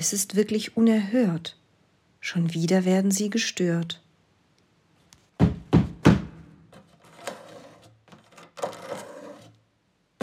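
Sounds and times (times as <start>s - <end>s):
speech: 0.0s - 1.6s, 2.2s - 4.0s
heavy knocking on a door at night: 5.4s - 6.4s.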